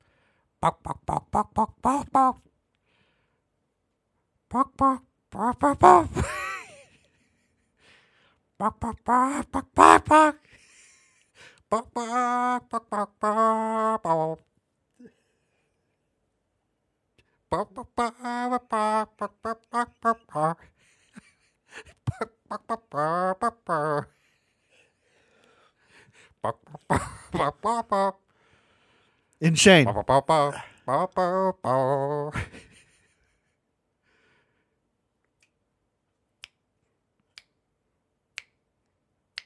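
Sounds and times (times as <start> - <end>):
person imitating chicken clucks and squawks: 0.6 - 2.5, 4.5 - 6.7, 8.6 - 10.4, 11.7 - 15.1, 17.5 - 20.7, 22.0 - 24.1, 26.4 - 28.2, 29.4 - 32.4
speech: 0.6 - 2.5, 4.5 - 6.3, 8.6 - 10.6, 11.4 - 15.2, 17.5 - 20.7, 21.7 - 24.2, 26.4 - 28.2, 29.4 - 32.7.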